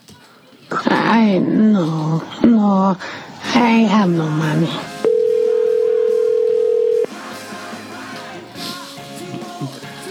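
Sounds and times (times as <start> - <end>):
noise: 0.0 - 10.0
speech: 1.1 - 4.9
loud steady telephone dial tone: 5.0 - 7.1.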